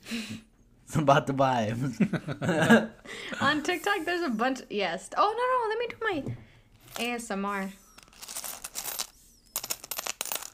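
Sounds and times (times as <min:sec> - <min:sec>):
speech: 0:00.1 - 0:06.4, 0:07.0 - 0:07.8
coins jingling in a change jar: 0:07.8 - 0:10.5
paper money crinkling: 0:07.8 - 0:10.5.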